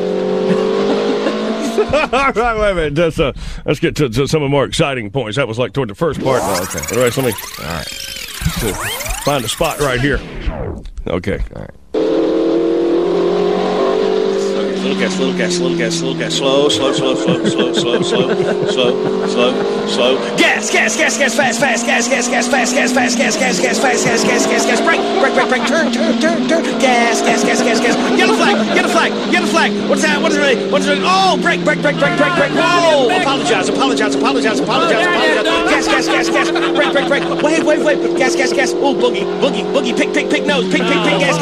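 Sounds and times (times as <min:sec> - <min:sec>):
race car engine revving through gear changes: 0:00.0 - 0:02.1, 0:06.2 - 0:10.1, 0:12.0 - 0:41.4
laughter: 0:00.5 - 0:02.6, 0:16.5 - 0:22.2, 0:23.0 - 0:30.5, 0:32.0 - 0:38.6, 0:40.5 - 0:41.4
speech: 0:01.8 - 0:11.8, 0:14.8 - 0:41.4.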